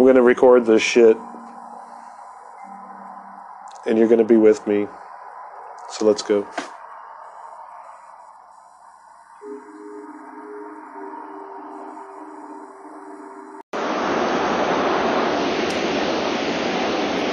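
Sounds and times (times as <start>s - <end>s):
low humming drone: 0.0s - 5.9s, 6.8s - 17.2s
speech: 0.1s - 1.3s, 3.8s - 5.0s, 5.9s - 6.7s.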